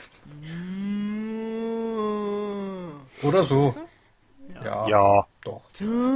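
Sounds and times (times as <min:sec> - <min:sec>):
person imitating a bull's moo: 0:00.3 - 0:03.1, 0:05.8 - 0:06.1
speech: 0:03.2 - 0:03.8, 0:04.6 - 0:06.1.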